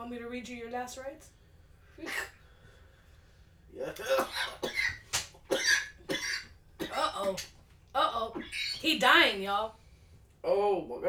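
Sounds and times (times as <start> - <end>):
speech: 0.1 - 1.4, 2.0 - 2.4, 3.7 - 5.0, 6.9 - 9.8, 10.4 - 11.0
man coughing after smoking a strong rolled cigarette: 3.8 - 7.2.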